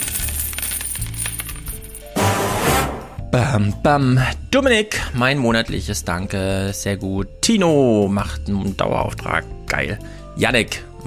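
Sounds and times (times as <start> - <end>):
rushing jangling burst: 0.0 - 2.2
coin dropping and bouncing with metallic clinks: 0.0 - 2.4
speech: 3.4 - 10.9.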